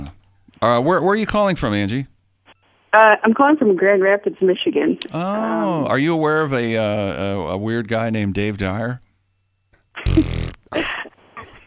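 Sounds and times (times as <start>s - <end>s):
speech: 0.6s - 2.1s, 2.9s - 9.0s
buzzy fart sound effect: 10.0s - 10.8s.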